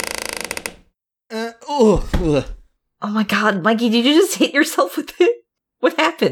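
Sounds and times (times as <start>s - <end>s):
basement door creaking open: 0.0s - 0.9s, 1.8s - 2.6s
speech: 1.8s - 6.3s.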